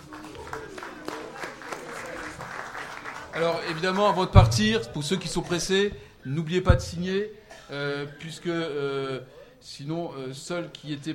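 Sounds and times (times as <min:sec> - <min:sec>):
council members applauding: 0:00.0 - 0:05.6
murmur of voices: 0:00.0 - 0:11.1
speech: 0:03.4 - 0:11.1.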